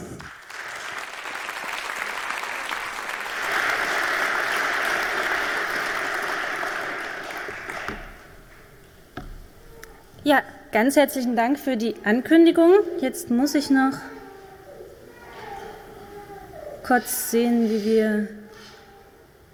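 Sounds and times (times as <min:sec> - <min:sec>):
audience applause: 0:00.0 - 0:08.8
speech: 0:10.3 - 0:14.1, 0:16.9 - 0:18.4.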